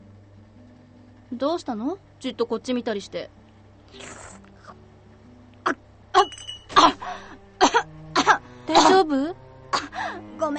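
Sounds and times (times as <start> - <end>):
speech: 1.3 - 4.2, 8.9 - 9.4
person coughing after choking on somen noodles: 6.7 - 9.0.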